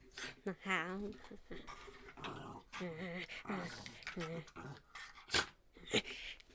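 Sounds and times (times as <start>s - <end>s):
person speaking softly: 0.4s - 1.7s
dog growling in low rumbles: 1.1s - 5.6s.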